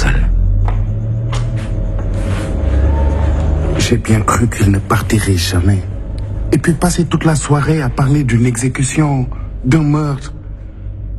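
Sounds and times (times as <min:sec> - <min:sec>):
car engine rumbling: 0:00.0 - 0:11.1
speech: 0:03.9 - 0:05.9, 0:06.5 - 0:10.4.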